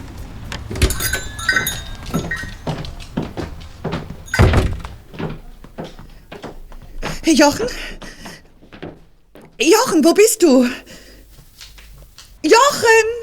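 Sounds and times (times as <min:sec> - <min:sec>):
door swinging open with a heavy thud: 0:00.4 - 0:05.4
speech: 0:07.3 - 0:08.0, 0:09.6 - 0:10.9, 0:12.4 - 0:13.2.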